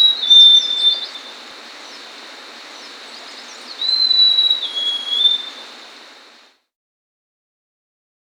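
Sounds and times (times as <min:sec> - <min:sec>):
buff-breasted mountain tanager high whistled song in Ecuador: 0:00.0 - 0:06.2.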